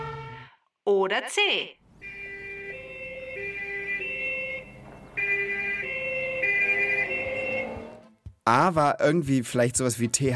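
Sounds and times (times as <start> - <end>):
two-tone police siren: 0.0 - 0.5, 2.0 - 8.2
speech: 0.9 - 1.8, 8.5 - 10.3.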